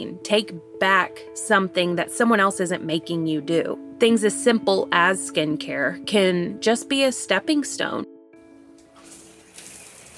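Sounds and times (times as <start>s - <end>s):
speech: 0.0s - 8.1s
shower water running in a hissing spray: 8.8s - 10.1s.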